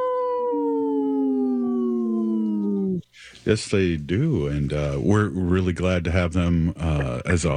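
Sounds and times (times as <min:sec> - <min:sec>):
long mournful howl: 0:00.0 - 0:03.0
speech: 0:03.2 - 0:07.5.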